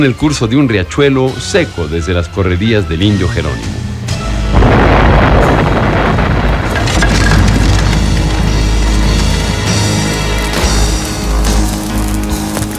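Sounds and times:
speech: 0.0s - 3.8s
explosion of gasoline and dynamite: 4.4s - 12.7s
crackling debris: 4.5s - 12.7s.

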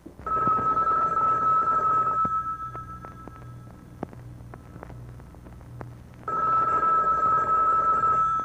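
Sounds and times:
telephone ringing with a high electronic tone: 0.2s - 4.0s, 6.3s - 8.4s.

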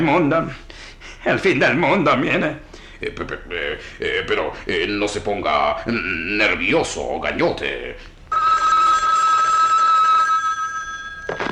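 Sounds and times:
speech: 0.0s - 8.1s
telephone ringing with an electronic trill: 8.3s - 11.4s.

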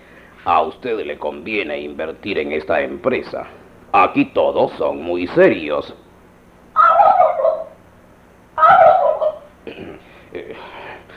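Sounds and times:
speech: 0.4s - 6.0s
turkey gobbling: 6.7s - 7.8s, 8.6s - 9.6s.

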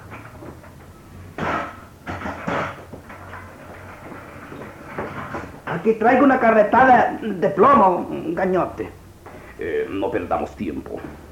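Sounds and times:
steady low hum: 0.0s - 11.3s
short wooden scrape of door: 1.4s - 5.6s
solid knocks of door: 1.4s - 5.8s
speech: 5.8s - 9.0s, 9.6s - 11.2s.

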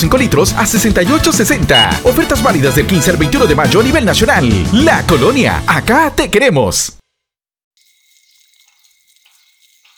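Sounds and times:
speech: 0.0s - 7.0s
water gushing from a hose while washing a car: 7.8s - 9.9s.

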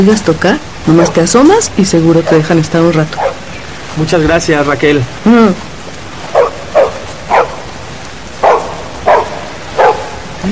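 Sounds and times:
speech: 0.0s - 3.4s, 4.0s - 5.7s
steady hiss: 0.0s - 10.5s
dogs barking: 2.2s - 2.5s, 3.1s - 3.6s, 6.3s - 10.3s.

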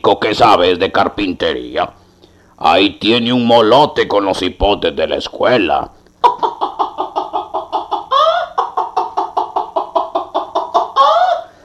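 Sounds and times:
speech: 0.0s - 2.0s, 2.6s - 6.5s
hen cackling after laying an egg: 6.2s - 11.6s.

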